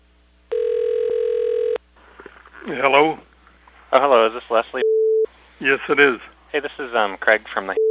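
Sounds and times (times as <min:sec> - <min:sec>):
telephone ringing tone: 0:00.5 - 0:01.8
speech: 0:02.7 - 0:03.3, 0:03.9 - 0:04.9, 0:05.6 - 0:07.8.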